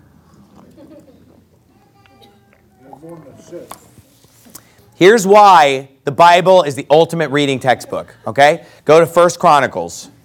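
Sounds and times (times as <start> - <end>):
sipping water: 2.0 - 5.0
speech: 3.0 - 3.9, 5.0 - 10.2.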